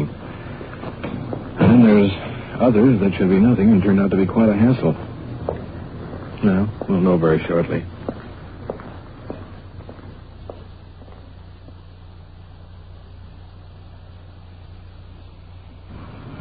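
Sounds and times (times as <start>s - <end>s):
footsteps walking up the path to a small English-style cottage: 0.0s - 4.0s, 4.8s - 12.0s
steady low rumble: 0.0s - 16.4s
speech: 1.7s - 5.1s, 6.4s - 8.0s.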